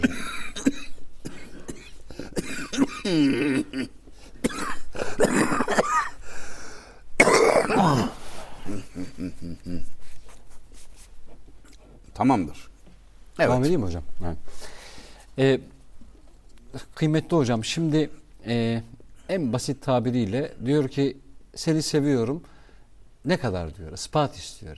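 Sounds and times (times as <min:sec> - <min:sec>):
person coughing in rough bursts: 0:00.0 - 0:06.2, 0:07.2 - 0:09.8
speech: 0:03.1 - 0:03.7, 0:12.2 - 0:12.6, 0:13.5 - 0:14.1, 0:15.4 - 0:15.7, 0:17.0 - 0:22.5, 0:23.2 - 0:24.7.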